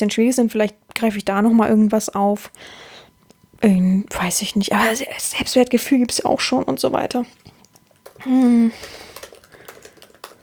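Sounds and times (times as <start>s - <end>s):
speech: 0.0s - 3.0s, 3.6s - 7.5s, 8.2s - 9.1s
typing on a computer keyboard: 7.7s - 10.4s
person humming: 8.2s - 9.2s.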